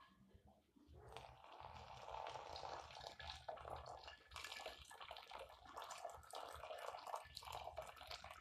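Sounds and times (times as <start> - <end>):
water pouring through a coffee filter brewing coffee: 1.0 - 8.3.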